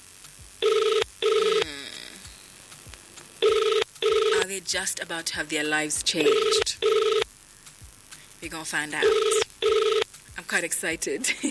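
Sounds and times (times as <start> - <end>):
telephone ringing on an outgoing call: 0.6 - 1.7, 3.4 - 4.5, 6.2 - 7.2, 9.0 - 10.1
speech: 4.7 - 6.6, 8.6 - 9.5, 10.5 - 11.5.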